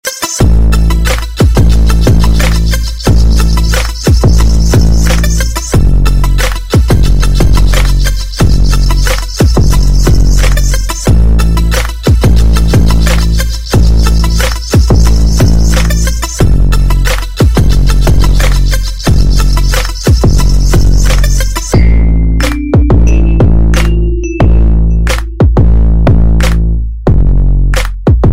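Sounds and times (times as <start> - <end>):
hip hop ringtone with power bass: 0.0 - 28.3.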